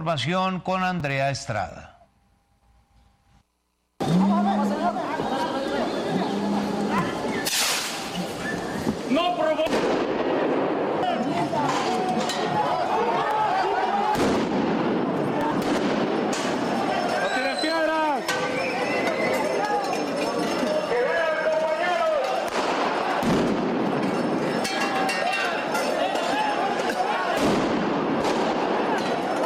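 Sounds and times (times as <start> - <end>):
speech: 0.0 - 1.9
crowds shouting in a street clash: 4.0 - 7.4, 10.9 - 29.4
firecrackers bursting during street clash: 7.2 - 11.8, 14.1 - 19.5, 22.3 - 25.8, 26.7 - 29.4.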